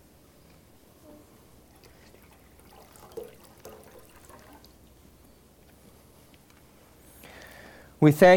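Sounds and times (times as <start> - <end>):
Jordan River water pouring and trickling into a container: 1.6 - 5.3
speech: 8.0 - 8.3.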